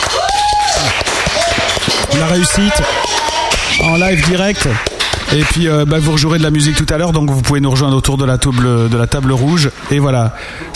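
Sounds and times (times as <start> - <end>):
small group clapping during a live broadcast: 0.0 - 6.0
whoop or whistle: 0.1 - 4.4
speech: 2.2 - 3.1, 3.7 - 10.7.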